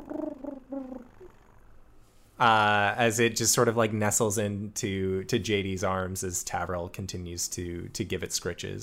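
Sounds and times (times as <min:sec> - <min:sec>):
human voice imitating a creature's purring coo: 0:00.0 - 0:01.8
speech: 0:02.4 - 0:08.8.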